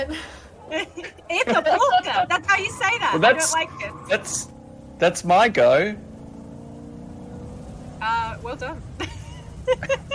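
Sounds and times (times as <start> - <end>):
laughter: 0.0 - 2.3, 9.0 - 10.1
speech: 0.0 - 6.1, 8.0 - 10.1
car engine drone from a car chase sound effect: 0.0 - 10.1.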